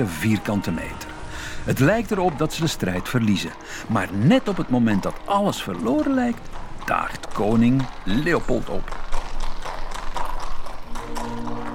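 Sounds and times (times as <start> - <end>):
speech: 0.0 - 9.0
horse hooves clip-clopping at a walking pace: 0.0 - 11.7.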